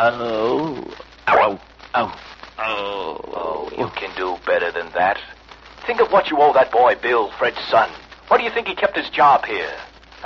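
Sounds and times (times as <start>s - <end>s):
speech: 0.0s - 2.3s, 3.8s - 10.2s
man's voice imitating a lion's growl: 0.0s - 3.9s.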